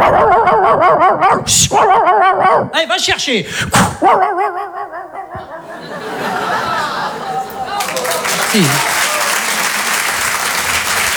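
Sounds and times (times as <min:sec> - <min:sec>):
person imitating a dog barking with mouth sound effects: 0:00.0 - 0:02.9, 0:03.7 - 0:05.8, 0:08.5 - 0:09.0
speech: 0:00.9 - 0:04.6, 0:08.5 - 0:08.9
laughter: 0:04.3 - 0:11.1.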